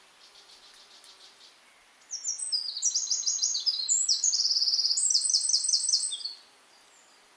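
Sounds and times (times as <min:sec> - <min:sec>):
Eurasian wren Troglodytes troglodytes singing: 0:00.2 - 0:07.2.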